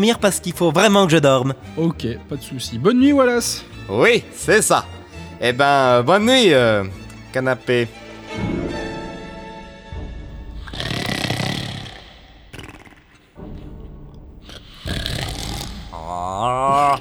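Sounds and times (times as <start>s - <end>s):
speech: 0.0s - 8.5s
person snoring loudly: 10.6s - 13.4s, 14.4s - 16.9s.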